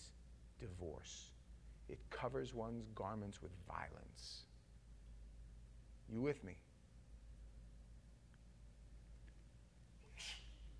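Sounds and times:
steady low hum: 0.0s - 10.7s
speech: 0.6s - 4.5s, 6.1s - 6.7s
person sneezing: 10.0s - 10.7s.

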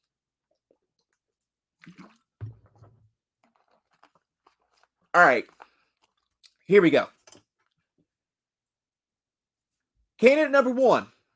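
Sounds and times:
wet gulps and sloshes of water: 0.4s - 6.7s
speech: 1.8s - 2.2s, 5.2s - 5.6s, 6.7s - 7.2s, 10.2s - 11.1s.

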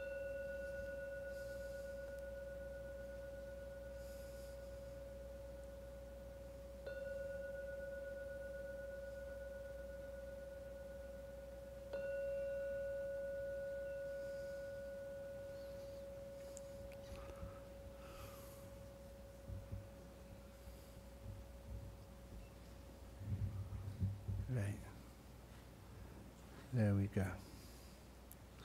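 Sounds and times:
meditation gong ringing: 0.0s - 23.8s
speech: 24.6s - 24.9s, 26.8s - 27.5s.

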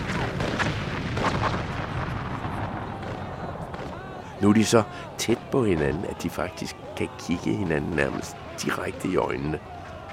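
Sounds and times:
cannon fire from the guns of a Danish ship: 0.0s - 4.2s
speech: 4.4s - 9.7s.

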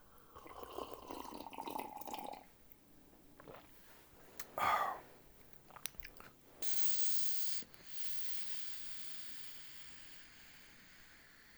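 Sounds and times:
slurping a sip of hot coffee: 0.2s - 2.5s, 3.4s - 9.2s
swallow: 0.2s - 2.5s, 3.4s - 7.6s.

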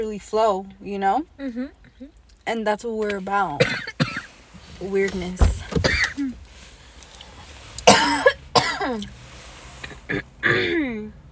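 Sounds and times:
speech: 0.0s - 3.9s, 4.8s - 5.5s, 8.8s - 9.2s, 10.1s - 11.2s
harsh coughs: 3.6s - 4.3s, 5.8s - 6.3s, 7.8s - 9.1s, 9.9s - 10.9s.

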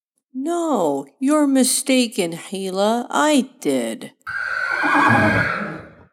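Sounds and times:
speech: 0.3s - 5.7s
horse neighing: 4.3s - 6.1s.

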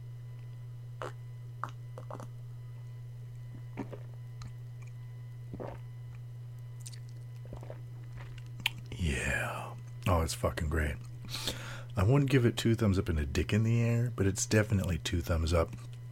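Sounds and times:
steady low hum: 0.0s - 16.0s
wet crunching and squishy chewing of a pear: 0.4s - 2.3s, 3.4s - 6.2s, 6.8s - 9.0s, 9.7s - 10.1s
speech: 1.0s - 2.2s, 10.3s - 11.1s, 12.0s - 15.9s.

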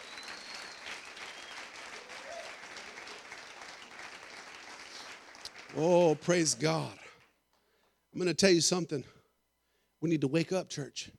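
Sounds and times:
audience clapping in sustained dense applause: 0.0s - 7.3s
speech: 5.8s - 7.0s, 8.2s - 9.2s, 10.0s - 11.1s.

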